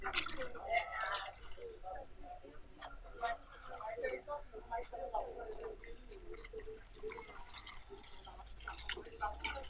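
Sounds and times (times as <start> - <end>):
clothes swished and lifted in a water basin: 0.0 - 1.9, 2.9 - 9.6.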